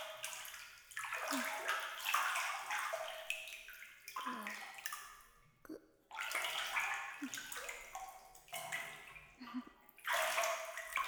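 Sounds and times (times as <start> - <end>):
hot bath water sloshing and splashing: 0.0 - 5.3, 6.1 - 11.0.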